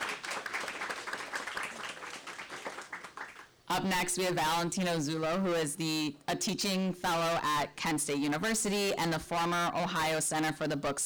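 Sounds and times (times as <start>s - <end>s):
room full of people applauding: 0.0s - 3.6s
speech: 3.7s - 11.0s.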